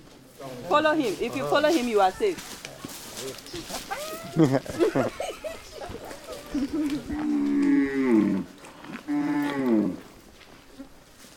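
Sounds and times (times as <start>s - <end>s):
speech: 0.5s - 2.5s, 3.2s - 5.1s, 6.5s - 8.6s
laughter: 3.9s - 7.2s
herd of cows mooing: 6.6s - 10.1s.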